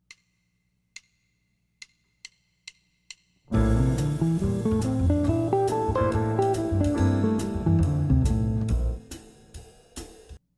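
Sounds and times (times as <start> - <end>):
B flat major seventh flat five chord: 3.5 - 9.0.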